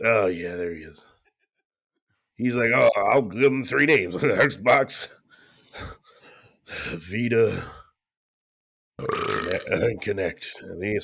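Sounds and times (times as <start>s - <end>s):
speech: 0.0s - 1.2s, 2.4s - 6.0s, 6.7s - 7.8s, 9.0s - 11.0s
loud burp: 9.0s - 9.9s.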